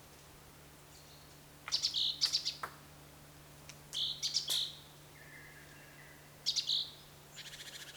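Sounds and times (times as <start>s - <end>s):
great tit Parus major chipping calls with whistled tone: 1.0s - 2.7s, 3.9s - 7.9s.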